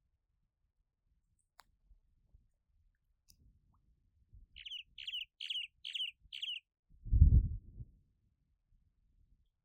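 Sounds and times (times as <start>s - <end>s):
Cuban martin chirping: 4.6s - 6.7s.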